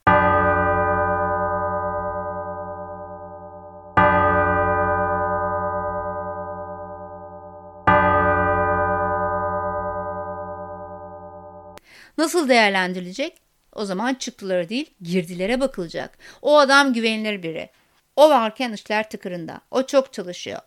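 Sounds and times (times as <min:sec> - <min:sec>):
deep church bell tolling: 0:00.0 - 0:11.8
speech: 0:12.2 - 0:20.6.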